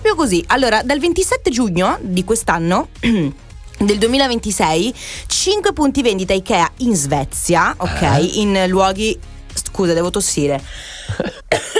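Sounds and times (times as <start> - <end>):
speech: 0.2 - 11.7
person coughing: 3.0 - 3.4, 7.8 - 8.3, 11.0 - 11.7
throat clearing: 3.0 - 3.4, 7.8 - 8.3, 11.1 - 11.7
short breaths: 5.0 - 5.3, 10.6 - 11.2
throaty voiced grunts: 7.8 - 8.3, 11.0 - 11.7.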